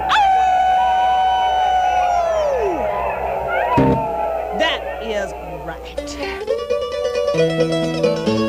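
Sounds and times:
dog howling: 0.0s - 7.9s
speech: 7.4s - 8.3s.

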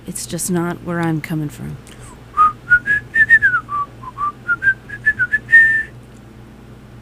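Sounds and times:
speech: 0.1s - 2.0s
low hum: 1.7s - 7.0s
person whistling a tune: 2.4s - 5.9s.

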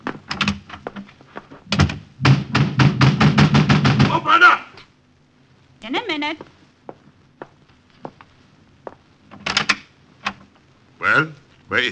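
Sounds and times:
loud wooden knocks and thumps: 0.0s - 4.2s
heavy cellar door thudding shut: 1.7s - 4.2s
speech: 6.2s - 6.5s, 11.2s - 11.9s.

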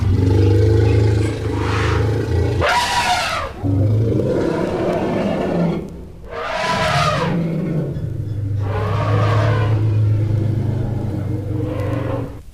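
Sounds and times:
wild elephants trumpeting: 0.0s - 12.4s
wild elephants deep rumbling: 0.0s - 12.5s.

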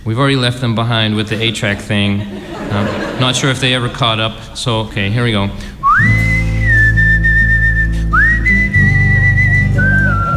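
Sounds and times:
speech: 0.1s - 6.2s
laughter: 1.1s - 5.6s
person whistling a TV show theme tune: 5.8s - 10.3s.

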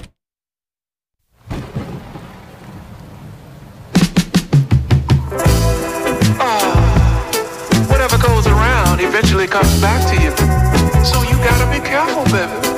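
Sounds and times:
rain: 1.4s - 4.0s
rhythmic music: 4.5s - 12.7s
speech: 9.2s - 12.7s.

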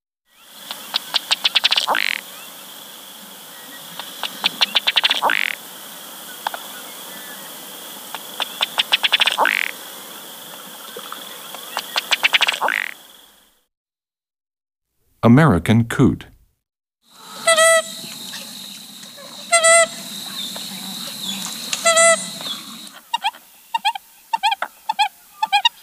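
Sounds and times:
hiss: 0.4s - 13.6s, 17.1s - 25.8s
Ruddy Duck display calls: 0.6s - 2.5s, 3.9s - 5.6s, 8.1s - 9.8s, 11.5s - 13.0s, 17.2s - 25.8s
speech: 15.2s - 16.3s.

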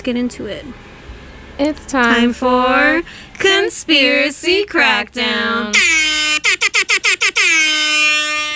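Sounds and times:
speech: 0.0s - 0.9s, 1.6s - 5.9s
loud air horn blasts: 5.7s - 8.5s.

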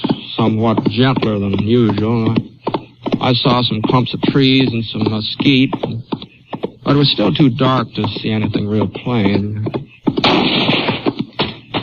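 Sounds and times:
speech: 0.4s - 6.1s, 6.8s - 9.8s
gunfire in a desert canyon at dusk: 10.2s - 11.8s.

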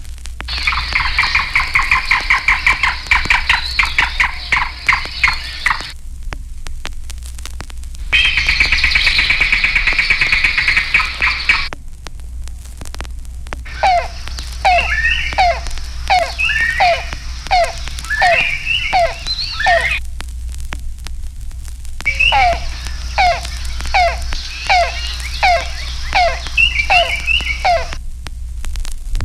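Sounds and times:
yellow-billed cuckoo rapid wooden knocking calls: 0.5s - 6.0s, 8.1s - 11.7s, 13.7s - 20.0s, 22.1s - 28.0s.

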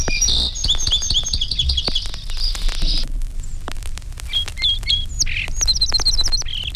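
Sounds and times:
four song sparrows singing varied songs: 0.0s - 3.0s, 4.3s - 6.7s
faint low rumble: 0.0s - 6.7s
scattered clicks: 0.0s - 6.7s.

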